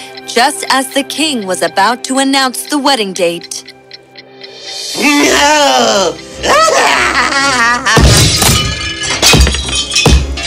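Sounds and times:
speech: 0.4 - 3.7, 4.7 - 8.2
laughter: 6.4 - 8.0
clock being smashed and destroyed: 8.0 - 10.4.

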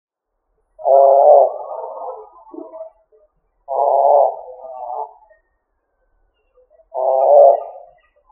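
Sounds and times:
pigeon cooing: 0.8 - 2.9, 3.7 - 5.2, 6.9 - 8.0.

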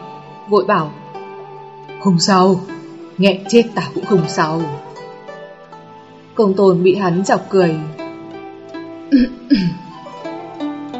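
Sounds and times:
speech: 0.5 - 1.0, 2.0 - 4.8, 6.4 - 8.0, 9.1 - 9.8
man clearing throat: 9.2 - 9.9
man giving a dry cough: 9.2 - 9.9.

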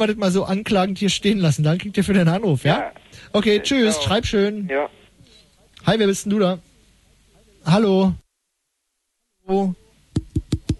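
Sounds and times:
speech: 0.0 - 5.0, 5.8 - 6.7, 7.6 - 8.2, 9.5 - 9.8
knocking on a microphone: 10.1 - 10.7.

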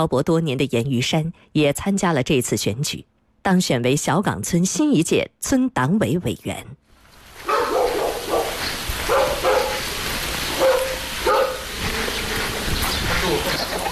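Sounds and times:
speech: 0.0 - 6.8
dogs barking in a village courtyard: 7.4 - 13.9.

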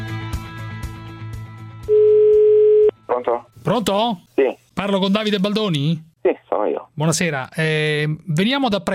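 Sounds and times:
telephone dial tone while placing a call: 1.9 - 2.9
speech: 3.7 - 6.1, 7.0 - 8.9.

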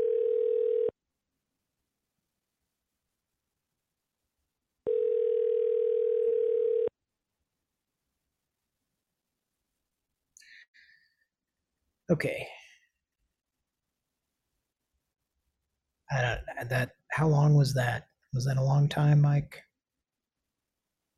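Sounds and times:
telephone ringing tone: 0.0 - 0.9, 4.9 - 6.9
speech: 12.1 - 12.6, 16.1 - 19.7.

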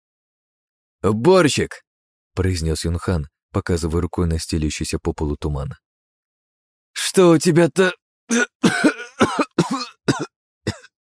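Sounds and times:
speech: 1.0 - 5.8, 7.2 - 10.3
man coughing harshly in a fog-filled room: 8.3 - 10.9.

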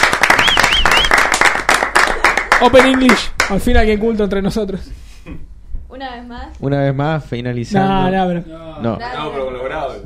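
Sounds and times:
group of people applauding an English teacher: 0.0 - 3.7
speech: 2.6 - 10.0.

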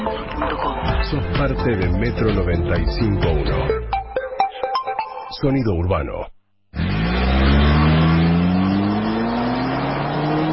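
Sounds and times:
speech: 0.1 - 3.8, 5.4 - 6.4
car engine revving hard at very high RPM: 6.8 - 10.5.

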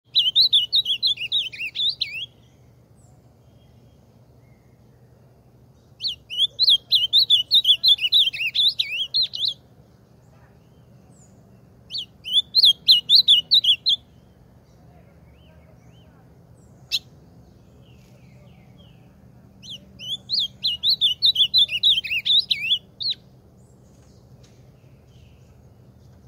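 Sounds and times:
ultramarine grosbeak singing: 0.0 - 26.2.

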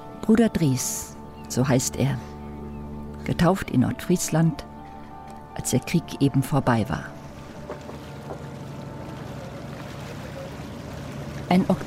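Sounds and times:
speech: 0.3 - 2.3, 3.2 - 4.7, 5.6 - 7.2, 11.5 - 11.8
dark wooden-planked ship moving on the water past a lighthouse: 7.1 - 11.8.

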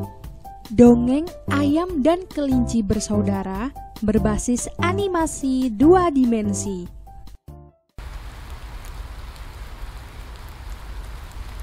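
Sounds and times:
speech: 0.0 - 7.0
music: 0.0 - 8.0
rain falling in the rainy season: 8.0 - 11.6.

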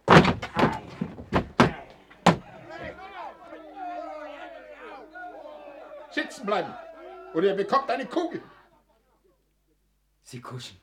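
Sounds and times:
bolted door being forced open: 0.0 - 2.5
laughter: 0.5 - 9.4
speech: 6.4 - 8.5, 10.3 - 10.8.

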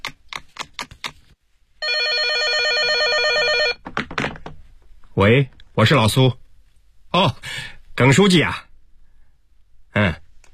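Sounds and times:
electronic warbling telephone ring as a call is placed to a pharmacy: 1.8 - 3.8
speech: 5.2 - 6.4, 7.1 - 8.7, 10.0 - 10.2.

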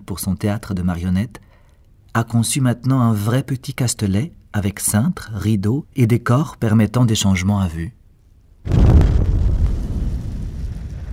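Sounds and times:
speech: 0.1 - 1.4, 2.1 - 8.0
loud explosion of a petrol pump set on fire: 8.7 - 11.1.

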